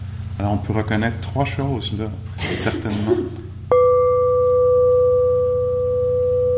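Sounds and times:
faint low hum: 0.0s - 6.5s
speech: 0.4s - 3.4s
meditation bell ringing with a clear steady tone: 3.7s - 6.5s.

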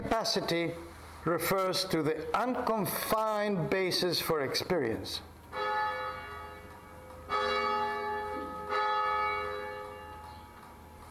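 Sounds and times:
speech: 0.2s - 5.3s
resonant church bell strikes: 5.6s - 11.0s.

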